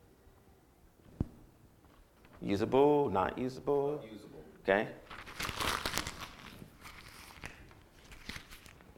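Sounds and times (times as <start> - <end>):
speech: 2.4 - 5.2
blank sheet of paper being crumpled: 5.0 - 8.9.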